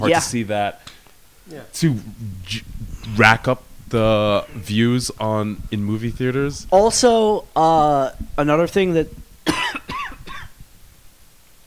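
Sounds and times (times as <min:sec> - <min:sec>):
speech: 0:00.0 - 0:00.9, 0:01.5 - 0:09.2
person coughing: 0:09.5 - 0:10.6.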